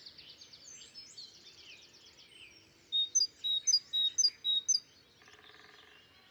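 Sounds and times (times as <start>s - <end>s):
great tit Parus major piercing high calls: 3.1s - 4.8s.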